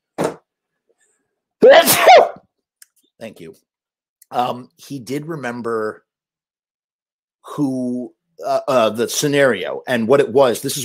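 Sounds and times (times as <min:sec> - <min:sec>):
person sneezing: 0:01.6 - 0:02.4
voice fragment: 0:01.6 - 0:02.4
speech: 0:03.2 - 0:03.7, 0:04.3 - 0:06.0, 0:07.6 - 0:10.8.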